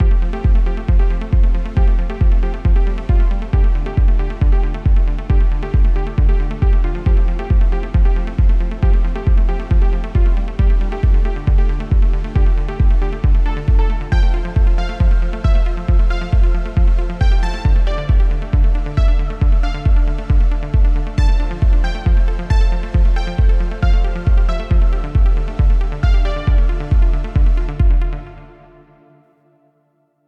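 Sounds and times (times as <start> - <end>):
melodic techno music: 0.0 - 29.2.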